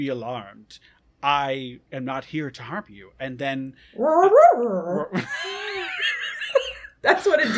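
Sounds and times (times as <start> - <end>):
speech: 0.0 - 5.6, 7.0 - 7.5
person imitating a wolf growl-whine: 4.0 - 5.2.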